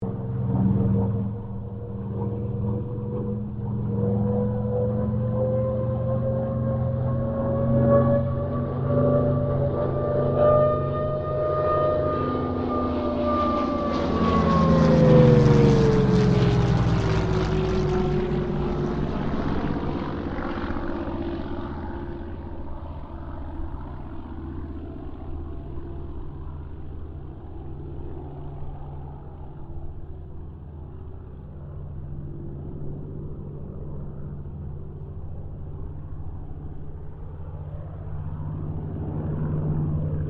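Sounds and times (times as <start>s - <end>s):
Kittyhawk and Boomerang airplanes passing: 0.0s - 40.2s.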